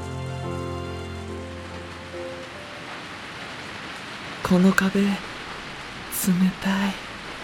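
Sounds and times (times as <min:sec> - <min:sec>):
sustained musical chord: 0:00.0 - 0:03.2
steady rain falling during the rainy season: 0:00.0 - 0:07.4
speech: 0:04.5 - 0:05.3, 0:06.2 - 0:07.0.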